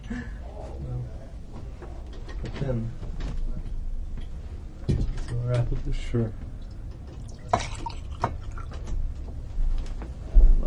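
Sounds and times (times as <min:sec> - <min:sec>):
low steady rumble: 0:00.0 - 0:10.6
speech: 0:02.5 - 0:03.0, 0:05.5 - 0:06.4
juice being poured into a glass: 0:07.2 - 0:08.7.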